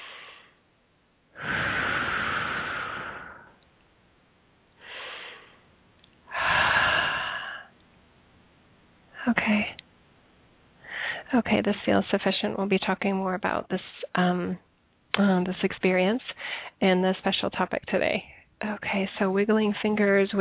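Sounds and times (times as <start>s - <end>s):
deep slow breaths: 0.0s - 0.6s, 1.4s - 3.6s, 4.8s - 5.7s, 6.3s - 7.8s, 10.8s - 11.3s, 16.3s - 16.8s
speech: 11.4s - 20.3s.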